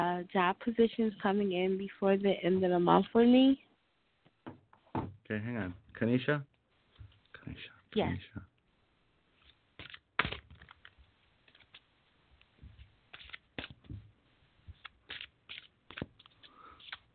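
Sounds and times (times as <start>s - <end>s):
speech: 0.2s - 3.7s, 5.0s - 6.5s, 7.4s - 8.5s
playing cards being shuffled and riffled: 9.4s - 17.1s.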